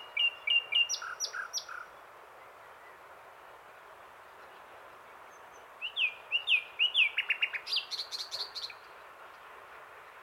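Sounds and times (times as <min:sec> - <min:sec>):
common nightingale Luscinia megarhynchos song phrase: 0:00.0 - 0:02.0, 0:05.3 - 0:08.9.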